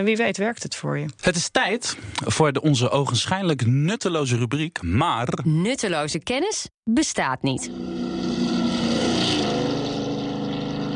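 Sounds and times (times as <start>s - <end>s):
speech: 0.0s - 8.6s
loud vehicle engine passing by: 7.7s - 10.9s.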